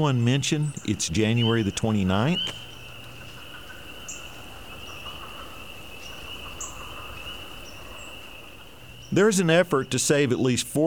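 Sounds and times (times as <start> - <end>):
speech: 0.0 - 2.7, 9.1 - 10.8
dense chorus of spring peepers trilling at night: 0.0 - 10.8
sharper individual spring peeper peeps: 0.7 - 8.3.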